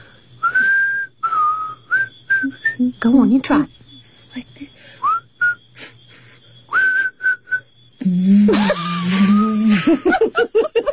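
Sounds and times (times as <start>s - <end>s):
person whistling: 0.4s - 2.8s, 5.0s - 5.7s, 6.7s - 9.8s
speech: 2.8s - 3.8s, 9.9s - 10.6s
laughter: 8.4s - 10.9s.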